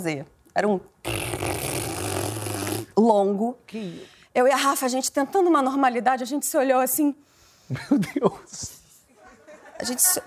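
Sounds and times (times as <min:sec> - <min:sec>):
speech: 0:00.0 - 0:01.5, 0:03.0 - 0:08.8, 0:09.8 - 0:10.2
person blowing a long raspberry with lips imitating a fart: 0:01.0 - 0:03.0
laughter: 0:09.1 - 0:10.2.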